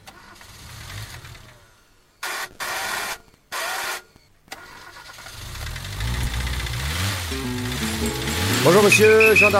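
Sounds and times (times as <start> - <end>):
old car engine cranking, sputtering and idling: 0.0 - 1.6, 4.5 - 9.5
speech: 8.6 - 9.5.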